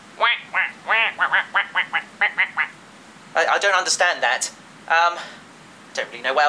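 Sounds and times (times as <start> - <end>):
duck quacking: 0.2 - 2.8
speech: 3.5 - 5.4, 6.0 - 6.4.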